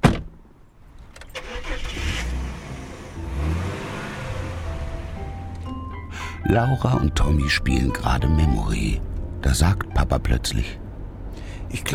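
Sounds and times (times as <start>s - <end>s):
car engine starting and pulling away: 1.1s - 6.4s, 8.6s - 11.9s
speech: 6.4s - 10.8s, 11.7s - 11.9s.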